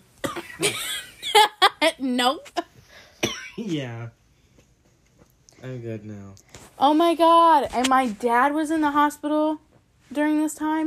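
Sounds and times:
person coughing in a harsh fit: 0.2 - 1.0, 3.2 - 3.7
speech: 0.6 - 2.6, 3.6 - 4.2, 5.6 - 10.8.

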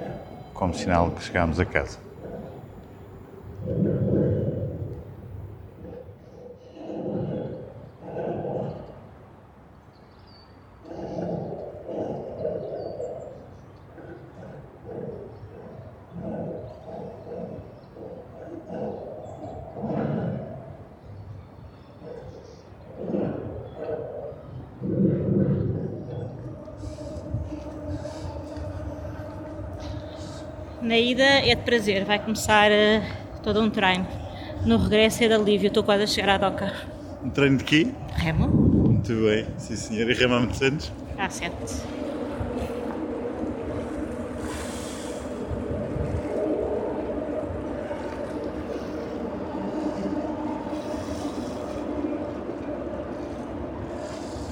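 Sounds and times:
steady humming drone: 0.0 - 6.2, 24.4 - 54.5
rumble of traffic on the 25 de Abril Bridge in Lisbon heard from a boat: 0.0 - 54.5
speech: 0.6 - 2.0, 31.4 - 42.0.

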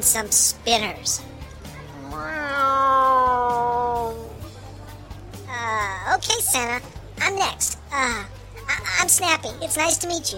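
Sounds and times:
speech: 0.0 - 1.3, 6.4 - 10.3
cat yowling and meowing: 2.0 - 4.3.

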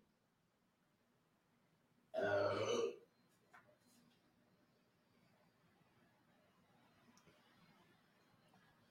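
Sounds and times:
smart speaker playing a burp sound: 2.2 - 3.0.

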